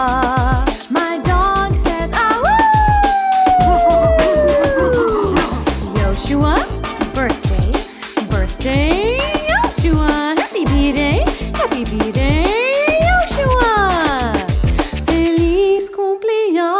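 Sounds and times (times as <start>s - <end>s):
beat-driven celebration song: 0.0s - 15.7s
dog howling: 2.4s - 5.6s.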